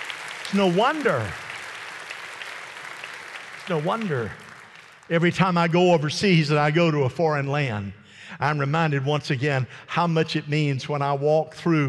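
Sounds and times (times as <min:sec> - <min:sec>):
audience clapping hands: 0:00.0 - 0:05.5
speech: 0:00.5 - 0:01.4, 0:03.7 - 0:04.4, 0:05.1 - 0:11.8
voice in a swooping call or cheer: 0:00.5 - 0:01.4.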